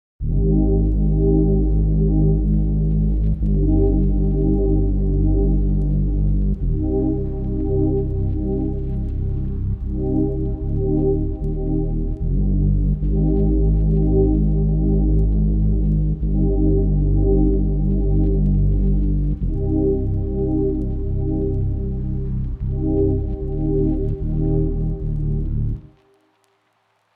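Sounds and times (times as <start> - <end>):
warm chords: 0.2 - 26.0.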